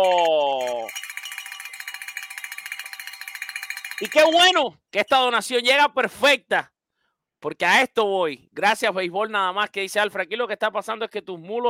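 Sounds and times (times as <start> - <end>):
speech: 0.0 - 0.4, 4.0 - 6.7, 7.4 - 11.6
small bell ringing: 0.0 - 4.5.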